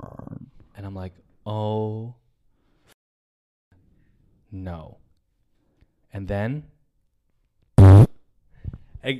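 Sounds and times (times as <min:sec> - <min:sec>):
speech: 0:00.8 - 0:02.2, 0:04.5 - 0:05.0, 0:06.1 - 0:06.7
fart: 0:07.8 - 0:08.2.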